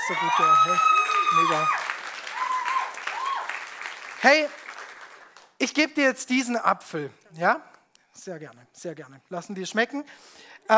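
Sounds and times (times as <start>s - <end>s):
whistle-like tones or cheers: 0.0s - 3.6s
audience applause: 0.0s - 5.6s
speech: 0.1s - 1.9s, 4.2s - 4.6s, 5.6s - 10.7s.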